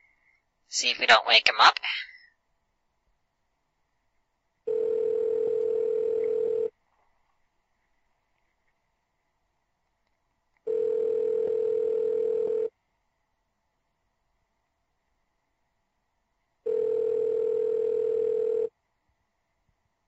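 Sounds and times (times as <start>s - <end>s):
speech: 0.7s - 2.1s
outgoing telephone call ringback tone: 4.7s - 6.7s, 10.7s - 12.7s, 16.7s - 18.7s.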